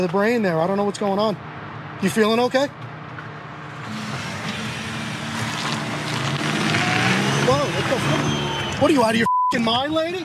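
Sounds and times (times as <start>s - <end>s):
speech: 0.0s - 2.9s, 7.5s - 10.2s
car engine droning as the car drives toward a person: 3.4s - 9.2s.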